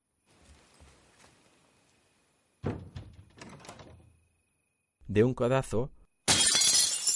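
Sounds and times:
latch and door frame rattling and scraping: 0:02.6 - 0:04.1
garden door opening with a loud clunk: 0:02.6 - 0:04.2
speech: 0:05.1 - 0:06.0.

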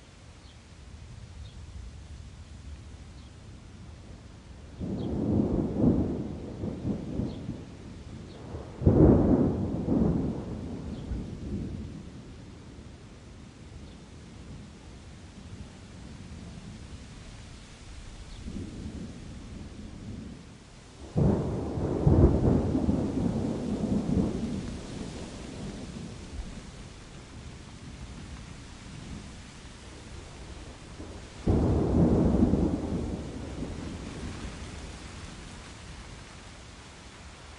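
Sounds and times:
steady rainfall hissing: 0:00.0 - 0:37.5
thunder rumbling: 0:04.8 - 0:12.3, 0:18.2 - 0:36.4.

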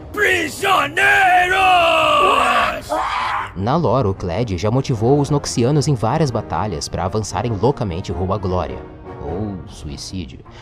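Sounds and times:
video game character's hoarse war cry: 0:00.0 - 0:03.6
speech: 0:00.2 - 0:01.6, 0:03.6 - 0:10.6.

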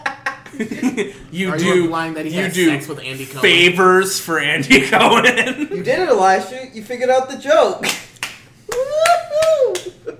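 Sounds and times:
laughter: 0:00.0 - 0:01.4, 0:04.6 - 0:06.1
speech: 0:00.6 - 0:08.0
sharp hand claps: 0:07.8 - 0:10.1.

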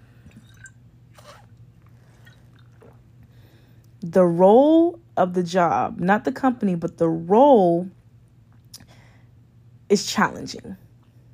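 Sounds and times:
low steady hum: 0:00.0 - 0:11.3
person sipping a drink: 0:00.2 - 0:03.0
swallow: 0:00.2 - 0:03.0
speech: 0:04.0 - 0:08.0, 0:09.9 - 0:10.8.

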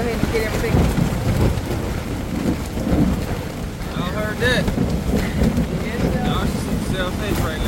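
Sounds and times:
deep thunder rumbling: 0:00.0 - 0:07.6
steady loud rain during a thunderstorm: 0:00.0 - 0:07.6.

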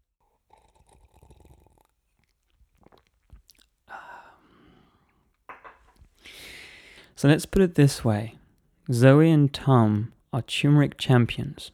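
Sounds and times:
person sipping a drink: 0:00.4 - 0:05.2
slurping and swallowing: 0:00.5 - 0:03.8
speech: 0:07.2 - 0:11.7.

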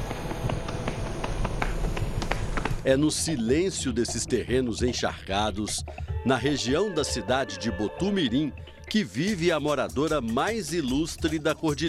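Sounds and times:
horse hooves clopping on a deserted highway in northern Minas Gerais Brazil: 0:00.0 - 0:03.0
speech: 0:02.8 - 0:11.8.

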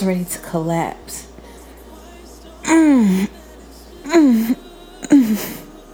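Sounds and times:
speech: 0:00.0 - 0:01.3, 0:02.7 - 0:03.4, 0:04.1 - 0:05.6
man moaning during sex: 0:02.6 - 0:03.4, 0:04.0 - 0:05.7.

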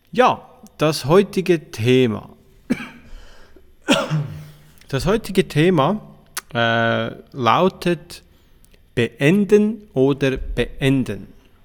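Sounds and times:
speech: 0:00.1 - 0:02.8, 0:04.9 - 0:08.3, 0:09.0 - 0:11.4
person coughing away from the microphone: 0:02.7 - 0:04.8.

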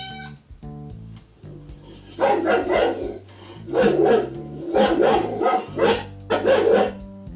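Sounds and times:
dog barking: 0:02.0 - 0:07.0.

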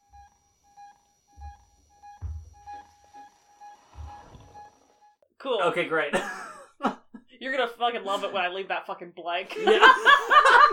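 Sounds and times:
electronic device emitting high-pitched tonal beeps: 0:00.0 - 0:05.2
low thumps: 0:01.3 - 0:04.8
speech: 0:05.4 - 0:10.7
laughter: 0:09.5 - 0:10.7.

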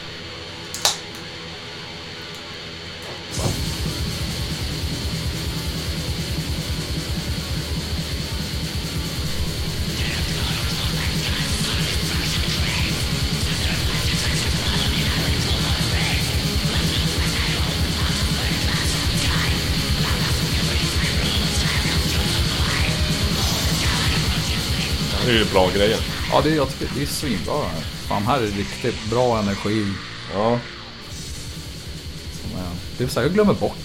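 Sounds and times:
harsh dense drone with a steady high whine in an eerie music intro: 0:00.0 - 0:33.8
low hum: 0:00.0 - 0:33.8
speech: 0:25.4 - 0:30.8, 0:33.0 - 0:33.8.

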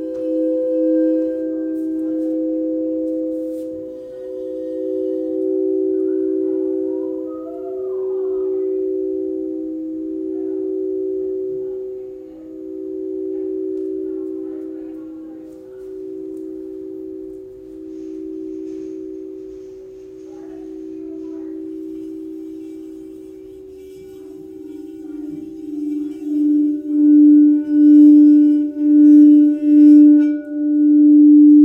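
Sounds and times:
crystal singing bowl ringing with a pure sustained tone: 0:00.0 - 0:31.6.

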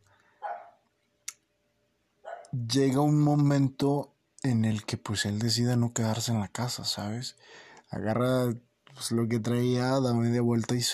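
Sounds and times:
small dog barking: 0:00.4 - 0:00.8, 0:02.3 - 0:02.6
speech: 0:02.5 - 0:10.9.

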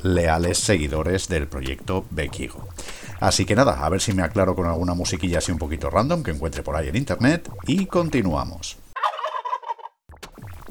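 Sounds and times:
speech: 0:00.0 - 0:08.8
turkey gobbling: 0:09.0 - 0:10.0.

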